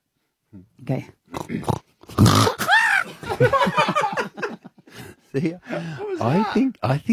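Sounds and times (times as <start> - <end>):
speech: 0.5 - 2.6, 5.3 - 7.1
person vocally imitating a pig stubbing its toe: 1.3 - 3.1
laughter: 2.6 - 6.4.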